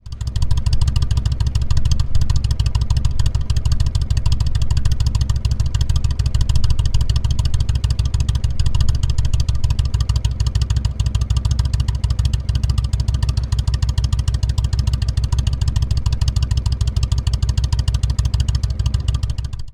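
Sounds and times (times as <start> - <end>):
motorcycle slip-on exhaust idling: 0.0 - 19.7.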